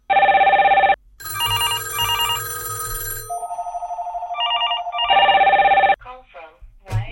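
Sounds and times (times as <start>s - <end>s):
AT&T cordless landline phones ringing: 0.1s - 6.0s.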